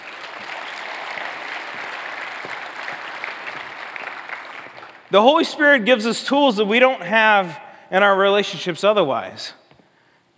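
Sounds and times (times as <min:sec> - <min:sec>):
sizable audience applauding in a room: 0:00.0 - 0:05.1
speech: 0:05.1 - 0:09.6.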